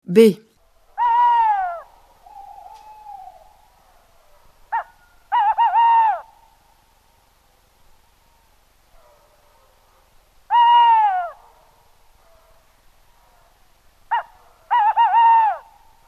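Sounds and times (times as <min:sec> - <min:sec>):
speech: 0:00.1 - 0:00.4
tawny owl hooting: 0:00.8 - 0:07.0, 0:10.5 - 0:11.5, 0:14.0 - 0:16.0.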